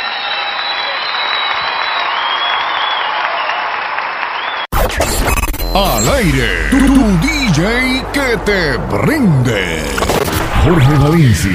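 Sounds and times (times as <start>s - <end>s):
audience whistles and cheers: 0.0s - 4.7s
large crowd clapping: 0.0s - 4.7s
speech: 5.8s - 11.5s.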